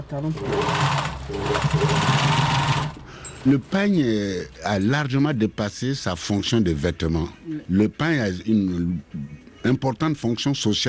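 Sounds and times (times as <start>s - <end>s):
speech: 0.1s - 2.7s, 3.4s - 10.8s
sewing machine whirring while altering a made-to-measure garment: 0.3s - 3.0s.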